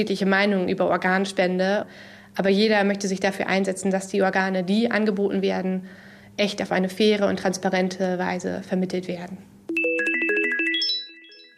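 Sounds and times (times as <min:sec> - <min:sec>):
speech: 0:00.0 - 0:09.5
discreet electronic alert ringtone announcing an organ offer at an organ donation foundation: 0:09.7 - 0:11.5.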